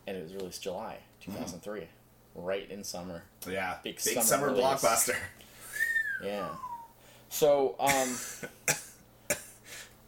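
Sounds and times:
faint hum: 0:00.0 - 0:10.0
speech: 0:00.1 - 0:05.5, 0:06.2 - 0:06.7, 0:07.3 - 0:08.7
person coughing: 0:07.8 - 0:09.6.

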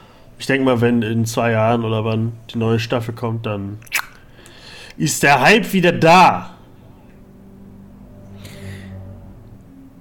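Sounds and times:
speech: 0:00.4 - 0:04.0, 0:05.0 - 0:06.5
car driving past outside: 0:06.5 - 0:10.0.

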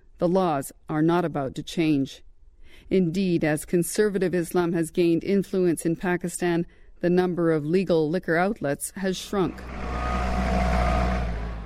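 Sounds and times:
speech: 0:00.2 - 0:10.0
forklift engine droning while moving a shipment toward a truck: 0:09.3 - 0:11.6.

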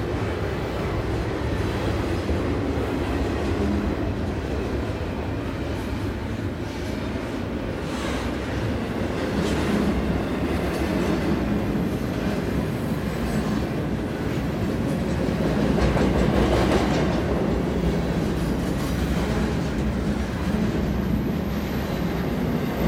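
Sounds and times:
diesel freight train passing at medium-high speed: 0:00.0 - 0:22.8
rhythmic thunka-thunka from freight train wheels: 0:07.8 - 0:21.2.

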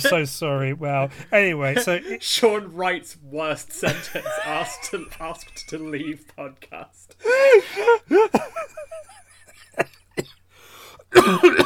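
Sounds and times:
speech: 0:00.0 - 0:09.2, 0:11.1 - 0:11.6
laughter: 0:03.8 - 0:06.4
person coughing and clearing throat: 0:08.2 - 0:08.8, 0:11.1 - 0:11.6.

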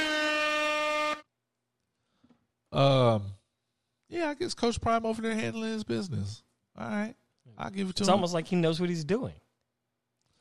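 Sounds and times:
loud blaring air horn blasting: 0:00.0 - 0:01.3
speech: 0:02.8 - 0:03.4, 0:04.1 - 0:09.4.

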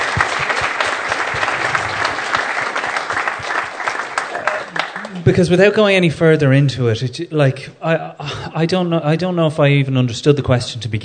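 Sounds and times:
audience applauding: 0:00.0 - 0:05.6
speech: 0:05.2 - 0:11.0.

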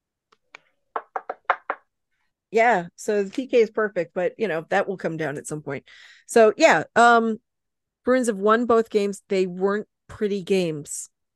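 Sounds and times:
knuckles knocking on a wooden desk: 0:00.9 - 0:01.9
speech: 0:02.5 - 0:07.4, 0:08.0 - 0:11.1.

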